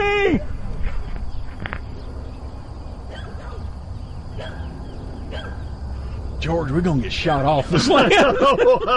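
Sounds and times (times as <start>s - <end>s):
rumbly outdoor background: 0.0s - 8.9s
speech: 0.3s - 0.5s, 6.5s - 8.9s
bird dog barking: 3.1s - 3.7s, 4.4s - 4.7s, 5.3s - 5.7s
laughter: 7.6s - 8.9s.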